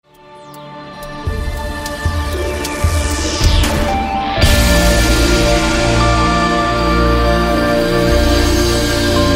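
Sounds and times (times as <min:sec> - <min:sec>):
fighting game round start music: 0:01.0 - 0:09.2.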